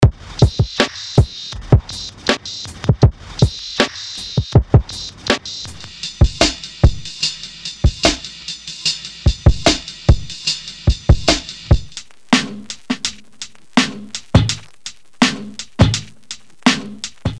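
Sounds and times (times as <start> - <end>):
boom bap drum beat: 0.0 - 17.3.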